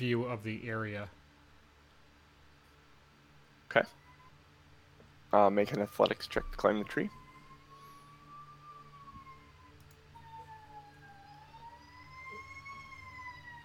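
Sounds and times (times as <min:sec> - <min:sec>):
speech: 0:00.0 - 0:01.2, 0:03.7 - 0:04.0, 0:05.3 - 0:07.2
fire truck siren wailing outside: 0:05.7 - 0:13.6.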